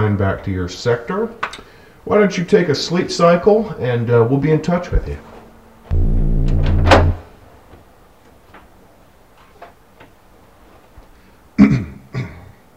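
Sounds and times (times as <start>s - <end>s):
speech: 0.1s - 5.3s
office door shutting: 5.9s - 7.3s
office door opening with a rattling creak: 6.4s - 7.2s.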